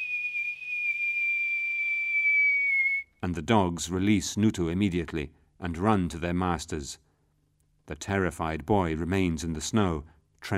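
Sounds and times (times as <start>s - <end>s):
long low whistle blown by a man to call dogs: 0.0s - 3.1s
speech: 3.2s - 7.0s, 7.9s - 10.5s.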